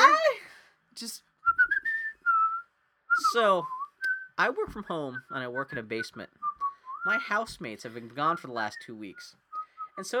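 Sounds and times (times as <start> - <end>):
speech: 1.0 - 1.3, 3.3 - 3.8, 4.4 - 9.4, 10.0 - 10.1
person whistling a short melodic phrase: 1.4 - 4.4, 6.4 - 7.2, 9.5 - 10.0.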